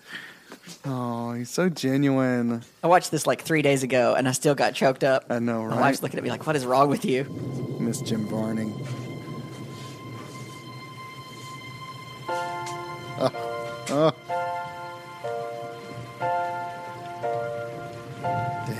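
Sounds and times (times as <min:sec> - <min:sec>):
speech: 0:00.8 - 0:09.0, 0:13.2 - 0:14.2
steady rain: 0:00.9 - 0:18.7
sustained musical tones: 0:05.7 - 0:18.7.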